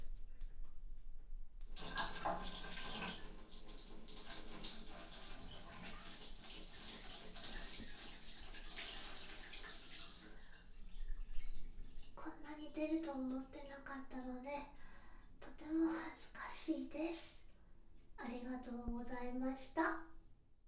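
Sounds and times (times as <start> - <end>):
toilet flushing: 1.7 - 12.3
speech: 12.8 - 14.8, 15.6 - 17.3, 18.3 - 20.1.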